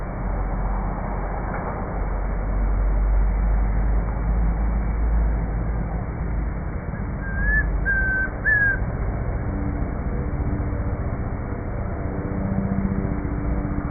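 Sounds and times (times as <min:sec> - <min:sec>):
constant low-pitched background rumble: 0:00.0 - 0:13.9
Chestnut-crowned antpitta Grallaria ruficapilla whistled call on a farm in Bogotá, Colombia: 0:07.1 - 0:08.8.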